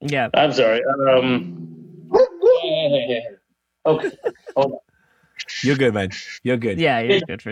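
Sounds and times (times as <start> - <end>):
speech: 0.0 - 7.5
dog whimpering and yelping: 2.0 - 2.8
laughter: 3.9 - 4.8.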